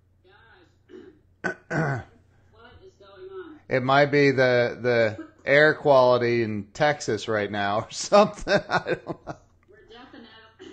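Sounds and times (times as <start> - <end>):
person clearing throat: 0.9 - 2.2
person coughing: 0.9 - 2.2
speech: 1.7 - 2.1, 3.7 - 9.4
laughter: 8.2 - 9.4.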